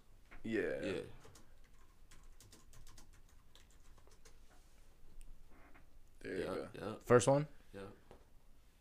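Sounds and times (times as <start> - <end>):
speech: 0.4 - 1.3, 6.2 - 8.0
typing on a computer keyboard: 1.2 - 4.4.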